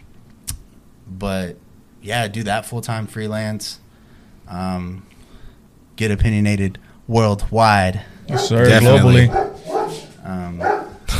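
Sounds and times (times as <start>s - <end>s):
speech: 1.1s - 3.8s, 4.5s - 5.1s, 6.0s - 9.4s, 10.3s - 10.7s
dog barking excitedly with high-pitched yaps: 8.2s - 11.1s.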